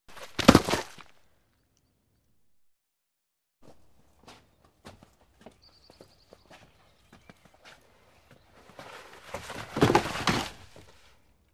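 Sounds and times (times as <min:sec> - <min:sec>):
objects falling: 0:00.1 - 0:01.2, 0:09.3 - 0:11.0.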